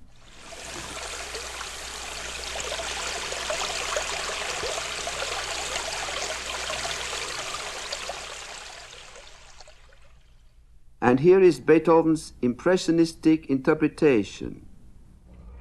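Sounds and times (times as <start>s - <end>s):
brook flowing: 0.0s - 10.5s
speech: 11.1s - 14.7s.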